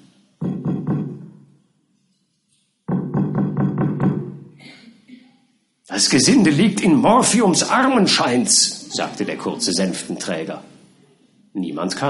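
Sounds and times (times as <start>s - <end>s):
door knocker knocking on a house door: 0.4s - 1.3s, 2.9s - 4.3s
speech: 5.9s - 10.7s, 11.6s - 12.0s.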